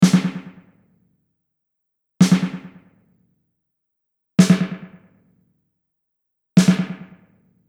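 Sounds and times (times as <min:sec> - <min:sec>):
snare drum with tape delay: 0:00.0 - 0:00.7, 0:02.2 - 0:02.8, 0:04.4 - 0:04.9, 0:06.6 - 0:07.2.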